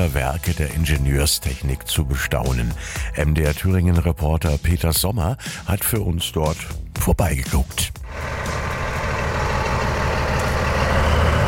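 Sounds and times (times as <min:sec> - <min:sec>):
speech: 0:00.0 - 0:08.4
1100 hp V100 diesel locomotive starting to move at a railway summer festival: 0:08.0 - 0:11.4.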